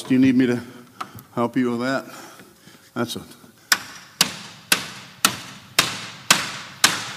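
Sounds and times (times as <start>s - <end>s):
speech: 0.1s - 0.8s, 1.4s - 2.2s, 3.0s - 3.4s
hammer striking a nail into wood: 3.7s - 7.1s.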